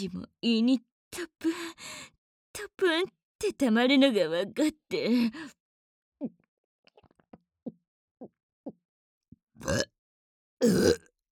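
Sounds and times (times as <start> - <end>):
speech: 0.0 - 5.6, 6.2 - 6.4, 9.6 - 9.9, 10.6 - 11.1
person burping: 9.6 - 9.9, 10.6 - 11.1.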